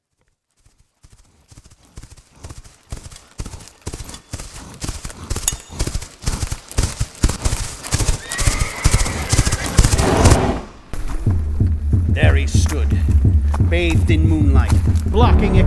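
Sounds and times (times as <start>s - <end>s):
heavy hooves of a giant war horse pounding: 0.0s - 15.6s
loud shrill horse whinny: 8.0s - 10.8s
speech: 13.7s - 15.6s.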